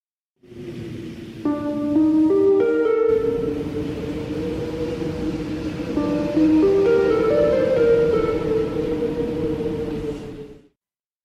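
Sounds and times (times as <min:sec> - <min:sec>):
soft breathy wind bed: 0:00.4 - 0:10.8
calm gentle game music peace layer: 0:01.5 - 0:09.3
harp-like tones: 0:01.6 - 0:10.4.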